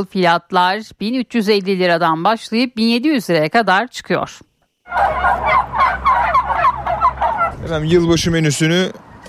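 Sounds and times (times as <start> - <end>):
speech: 0.0 - 6.3, 7.6 - 9.0
turkeys on display for sale gobbling: 4.9 - 8.2
low rumble: 4.9 - 8.4.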